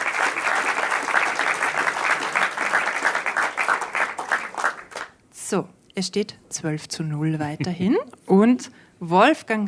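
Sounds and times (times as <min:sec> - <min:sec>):
audience applause: 0:00.0 - 0:05.2
speech: 0:05.5 - 0:09.6.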